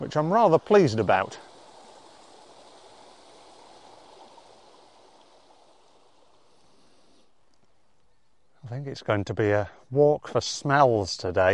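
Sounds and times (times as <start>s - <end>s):
small stream in a valley flowing: 0.0s - 8.7s
speech: 0.1s - 1.5s, 8.7s - 11.5s.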